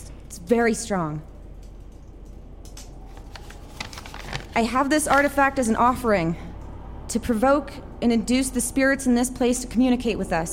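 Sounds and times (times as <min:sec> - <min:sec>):
low hum: 0:00.0 - 0:10.5
speech: 0:00.5 - 0:01.3, 0:04.6 - 0:06.4, 0:07.1 - 0:10.5
invitation letter rustling and crinkling: 0:03.0 - 0:05.5.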